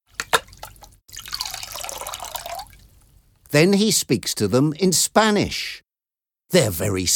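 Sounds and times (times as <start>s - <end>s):
drinking water dripping and splashing: 0.1s - 3.5s
speech: 3.5s - 5.8s, 6.5s - 7.1s.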